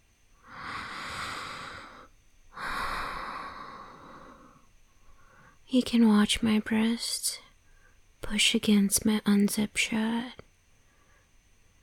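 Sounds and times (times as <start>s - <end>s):
slow soft breathing: 0.4s - 5.7s, 7.6s - 8.1s, 10.8s - 11.4s
speech: 5.7s - 7.4s, 8.2s - 10.4s.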